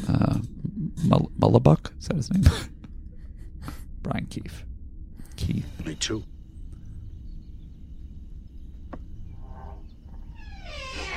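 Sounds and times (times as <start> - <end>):
steady low rumble: 0.0 - 11.1
speech: 1.0 - 2.8, 4.0 - 4.7, 5.4 - 6.3
door opening with a click: 10.4 - 11.1.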